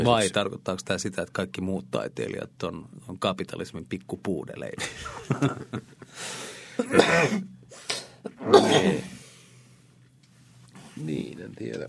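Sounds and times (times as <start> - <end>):
speech: 0.0 - 9.2, 11.0 - 11.8
harsh forceful coughs: 6.8 - 9.2.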